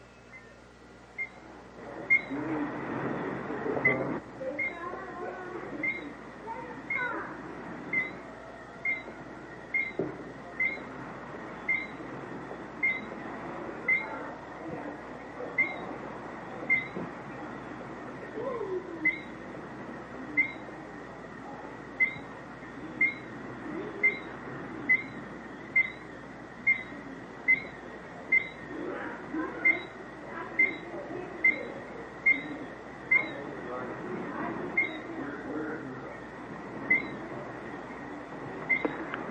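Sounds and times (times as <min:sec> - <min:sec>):
constant low rumbling noise: 0:00.0 - 0:39.2
bird calling at sundown: 0:01.2 - 0:39.2.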